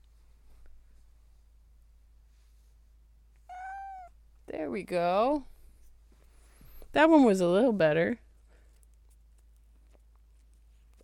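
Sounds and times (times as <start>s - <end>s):
low hum: 0.0s - 11.0s
cat giving a short high-pitched squeaky meow: 3.5s - 4.2s
speech: 4.5s - 5.5s, 6.9s - 8.2s.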